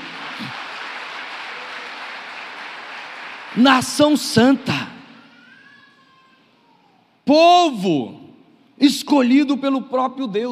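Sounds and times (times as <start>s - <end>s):
audience applauding: 0.0s - 5.2s
speech: 3.6s - 4.9s, 7.3s - 8.2s, 8.8s - 10.4s.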